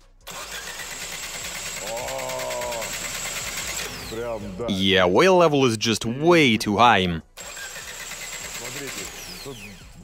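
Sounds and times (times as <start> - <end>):
engine cranking over without starting: 0.2 - 4.7, 7.3 - 10.0
speech: 4.1 - 7.3, 8.8 - 9.8.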